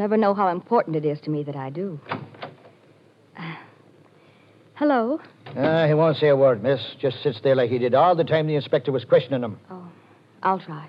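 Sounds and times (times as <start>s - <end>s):
speech: 0.0s - 2.2s, 4.8s - 10.8s
door moving and shutting: 2.0s - 2.7s.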